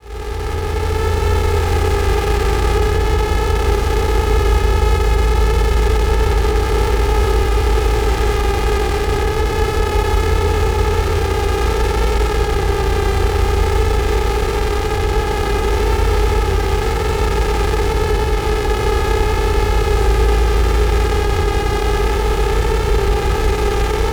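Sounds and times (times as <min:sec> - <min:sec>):
trailer synth ambience texture: 0:00.1 - 0:24.1.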